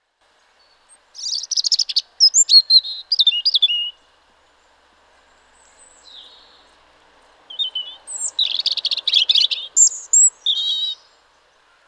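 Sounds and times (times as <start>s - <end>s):
European robin singing, Erithacus rubecula: 1.1s - 4.0s, 7.5s - 11.1s.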